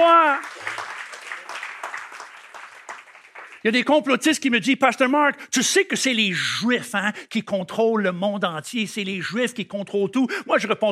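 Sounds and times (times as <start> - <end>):
congregation applauding during a church service: 0.0 - 4.2
speech: 3.6 - 10.8.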